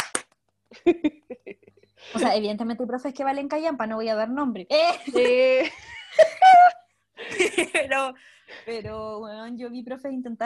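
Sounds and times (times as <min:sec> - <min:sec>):
sharp hand claps: 0:00.0 - 0:00.5
speech: 0:00.8 - 0:10.4
laughter: 0:05.0 - 0:08.0.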